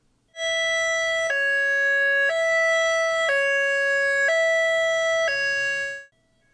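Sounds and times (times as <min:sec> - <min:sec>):
high-low emergency siren of first responders in Nevada County: 0:00.4 - 0:06.1.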